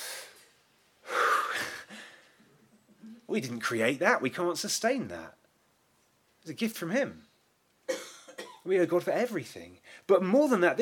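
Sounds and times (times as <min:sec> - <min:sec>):
person taking a deep breath: 0:01.0 - 0:02.4
speech: 0:03.3 - 0:05.4, 0:06.4 - 0:07.3, 0:08.7 - 0:10.7.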